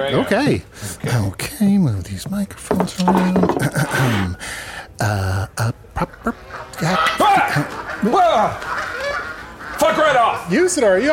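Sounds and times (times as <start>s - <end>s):
speech: 0.0s - 8.7s, 9.8s - 11.1s
geese by a bar honking and squawking aggressively: 6.2s - 11.1s.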